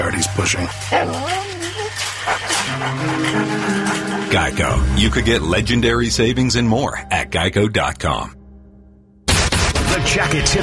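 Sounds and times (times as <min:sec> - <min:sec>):
speech: 0:00.2 - 0:01.5, 0:02.3 - 0:08.4, 0:10.0 - 0:10.6
dog whimpering in high wavering whines: 0:00.7 - 0:04.4.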